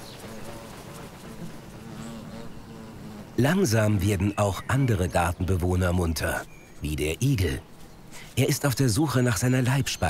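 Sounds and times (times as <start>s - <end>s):
bees buzzing in a garden: 0.0s - 6.0s
speech: 3.4s - 10.0s.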